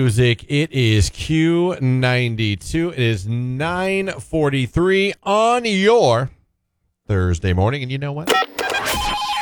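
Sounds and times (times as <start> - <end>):
speech: 0.0 - 6.4, 7.1 - 8.4
telephone ringing as a radio call-in contest effect: 8.3 - 9.3.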